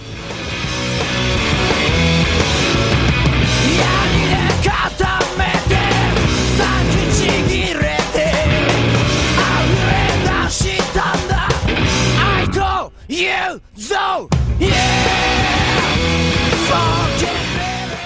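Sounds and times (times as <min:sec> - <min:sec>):
dense distorted guitars: 0:00.0 - 0:13.2, 0:13.8 - 0:18.0
Japanese garage punk rock song: 0:00.0 - 0:18.0
pounding drums: 0:00.8 - 0:12.2, 0:14.3 - 0:18.0
shouted vocals: 0:03.6 - 0:08.0, 0:09.4 - 0:18.0.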